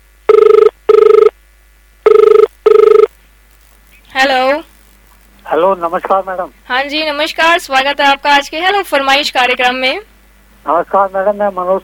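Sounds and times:
telephone ringing for an incoming call: 0:00.3 - 0:01.3, 0:02.1 - 0:03.1
speech: 0:05.6 - 0:11.8.

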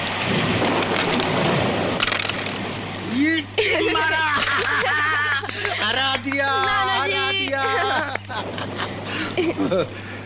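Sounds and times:
low rumble of thunder: 0:00.0 - 0:03.6, 0:07.9 - 0:10.2
steady heavy rain pouring: 0:00.0 - 0:10.2
laughter: 0:03.4 - 0:10.2
speech: 0:09.5 - 0:10.1.

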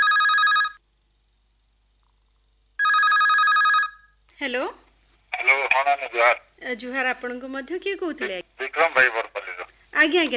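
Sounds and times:
telephone ringing with an incoming call: 0:00.0 - 0:00.8, 0:02.8 - 0:04.1
speech: 0:04.4 - 0:10.3.

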